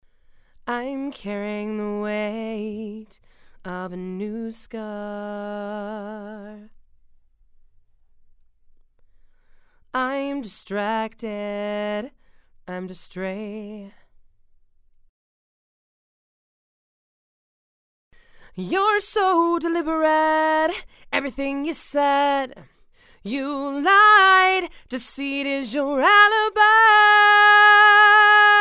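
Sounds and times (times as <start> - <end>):
woman singing: 0.7 - 6.7, 10.0 - 14.0, 18.5 - 28.6.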